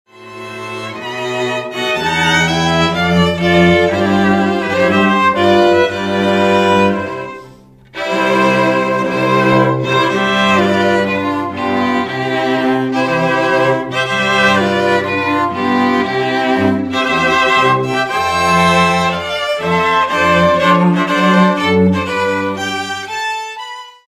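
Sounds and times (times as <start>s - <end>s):
string quartet playing a bridal march: 0.1s - 24.0s.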